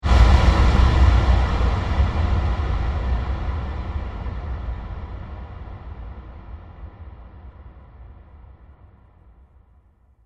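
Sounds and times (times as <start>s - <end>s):
dark cinematic hits: 0.0s - 7.2s.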